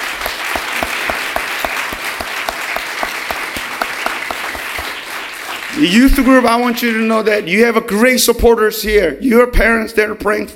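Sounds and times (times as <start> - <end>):
audience applauding: 0.0 - 6.9
speech: 5.8 - 10.5.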